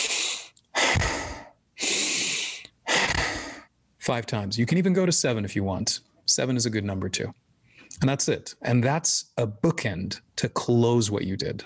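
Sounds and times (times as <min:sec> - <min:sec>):
exaggerated breathing in through the nose and out through the mouth: 0:00.0 - 0:03.7
speech: 0:04.0 - 0:07.4, 0:08.0 - 0:11.6.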